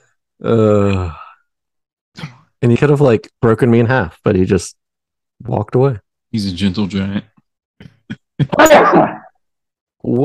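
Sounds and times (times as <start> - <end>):
speech: 0.4 - 1.2, 2.6 - 4.8, 5.4 - 9.1, 10.0 - 10.2
person sneezing: 8.4 - 9.3.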